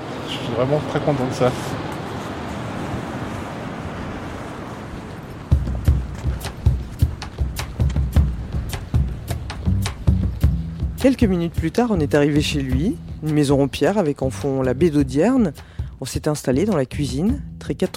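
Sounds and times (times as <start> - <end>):
ocean waves breaking on shore: 0.0 - 12.8
rough wind gusts: 0.0 - 16.5
speech: 0.5 - 1.9, 11.0 - 17.9
sharp irregular knocks and crackles: 5.5 - 11.0.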